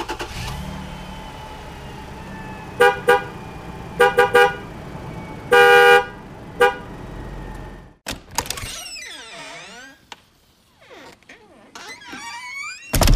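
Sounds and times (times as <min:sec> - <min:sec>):
car horn honk: 0:02.4 - 0:07.7
squeaky door-like creaks: 0:08.4 - 0:10.2, 0:10.8 - 0:13.1.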